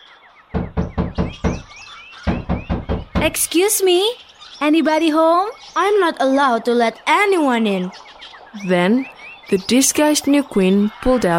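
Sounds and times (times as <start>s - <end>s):
faint birdsong chirping: 0.0s - 11.3s
firm knocking on a wooden door: 0.5s - 3.5s
speech: 3.2s - 11.3s.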